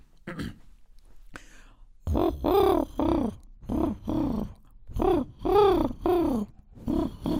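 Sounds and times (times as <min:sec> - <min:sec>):
person imitating pigeon cooing with low throaty coos: 0:02.0 - 0:07.3.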